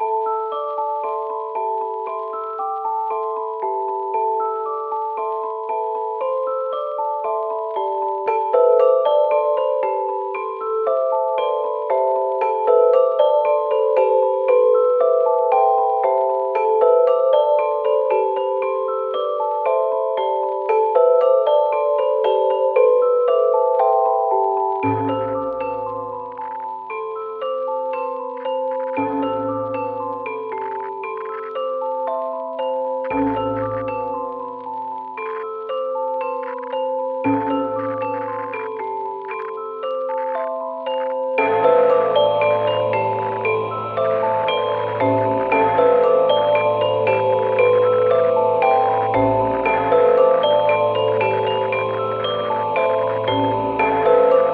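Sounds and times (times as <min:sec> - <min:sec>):
music loop: 0:00.0 - 0:54.5.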